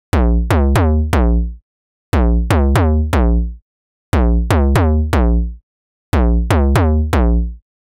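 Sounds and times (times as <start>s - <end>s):
deep house bass loop in E: 0.1s - 1.6s, 2.2s - 3.6s, 4.2s - 5.6s, 6.2s - 7.6s.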